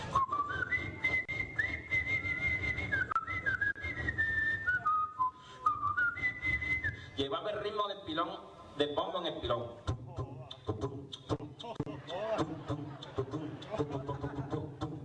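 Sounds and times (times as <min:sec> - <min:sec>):
grandfather whistling a porro melody: 0:00.1 - 0:07.2
speech: 0:07.2 - 0:09.9
laughter: 0:11.5 - 0:15.0.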